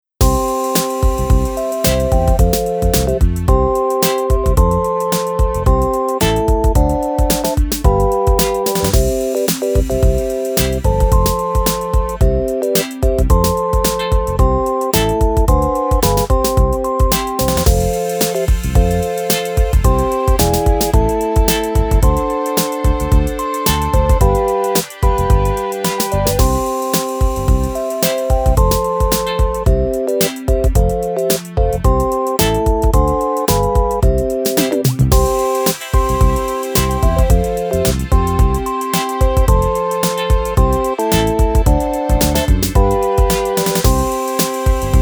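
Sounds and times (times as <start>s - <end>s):
tiny advert background music: 0.2s - 45.0s.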